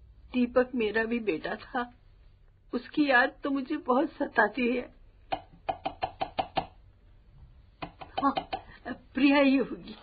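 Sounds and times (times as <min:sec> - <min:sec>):
speech: 0:00.3 - 0:02.0, 0:02.7 - 0:05.0, 0:08.2 - 0:08.5, 0:09.2 - 0:10.0
sharp knocking on a door: 0:05.3 - 0:06.8.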